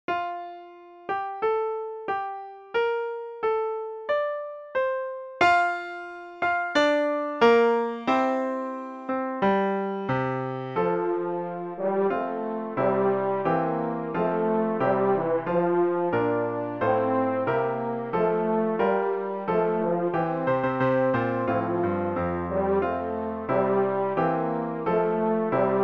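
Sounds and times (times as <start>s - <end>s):
piano accompanying a hymn: 0.0s - 25.8s
French horn playing a hymn: 9.6s - 25.8s.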